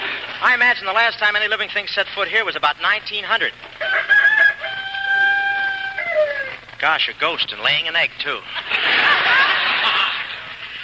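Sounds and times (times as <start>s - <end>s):
speech: 0.4s - 4.1s, 6.8s - 9.3s
rooster crowing: 3.8s - 6.6s
laughter: 8.4s - 10.8s.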